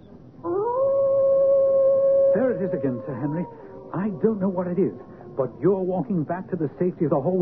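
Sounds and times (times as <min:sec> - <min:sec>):
hound baying and howling: 0:00.4 - 0:06.0
speech: 0:02.8 - 0:07.4.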